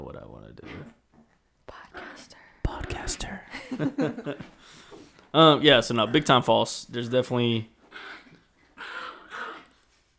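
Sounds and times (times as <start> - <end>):
quail dog growling: 0.5 - 2.3, 5.7 - 9.8
speech: 3.1 - 7.8
laughter: 3.5 - 4.6.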